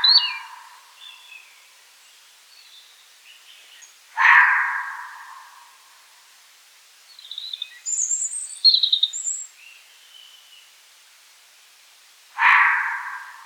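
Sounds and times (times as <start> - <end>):
European robin singing: 0.0 - 5.2, 7.1 - 10.8.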